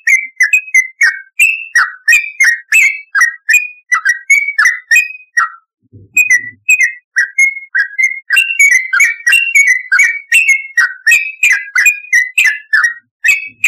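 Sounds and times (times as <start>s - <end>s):
Yellow-vented bulbul delivering chirpy slurred whistles: 0.0s - 13.6s
soft low thump: 5.8s - 6.6s.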